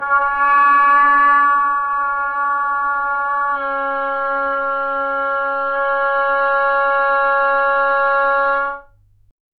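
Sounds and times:
wooden oboe sustained tone: 0.0s - 8.9s.

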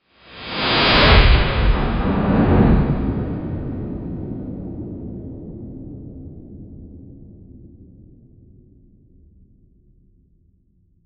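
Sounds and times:
slow motion blast: 0.3s - 7.5s.

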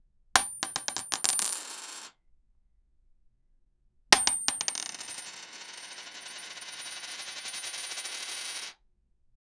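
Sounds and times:
coins clacking and falling: 0.4s - 2.1s, 4.2s - 8.8s.

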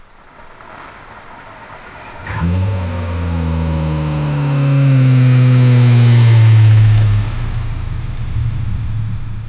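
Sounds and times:
BMW car drifting: 0.0s - 9.4s
BMW car engine performing: 1.9s - 9.4s.

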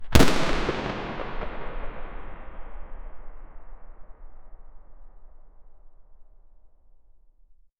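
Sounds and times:
outdoor gun explosion, reverberant: 0.0s - 5.0s.

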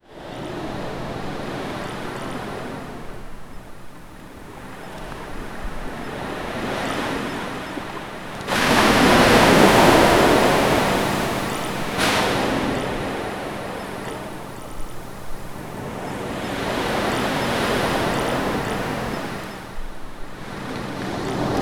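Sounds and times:
ocean waves crashing: 6.3s - 21.6s.

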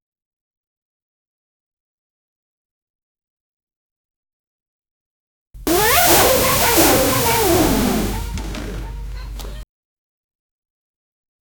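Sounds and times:
cartoon boy jump sound: 5.7s - 9.6s.

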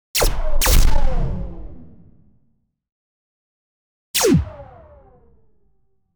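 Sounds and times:
space laser gun shot: 0.2s - 1.5s, 4.2s - 4.8s.

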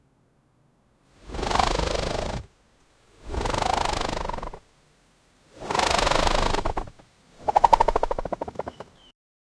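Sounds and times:
pigeon taking off rapidly with air burst: 1.2s - 2.5s, 3.1s - 4.7s, 5.5s - 9.1s.

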